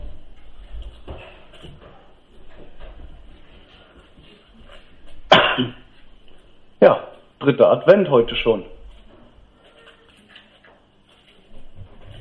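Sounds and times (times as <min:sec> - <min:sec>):
person coughing: 0:05.3 - 0:05.9
throat clearing: 0:05.3 - 0:05.9
speech: 0:05.6 - 0:05.8, 0:06.8 - 0:08.8.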